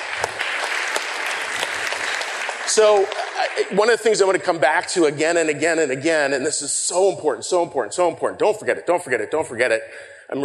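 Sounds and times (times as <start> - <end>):
crowd applauding: 0.0 - 5.1
speech: 2.8 - 10.4.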